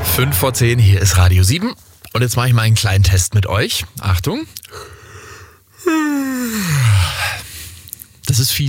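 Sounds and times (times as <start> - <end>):
speech: 0.2 - 4.9, 5.8 - 7.2, 8.3 - 8.6
person yawning: 5.8 - 7.4.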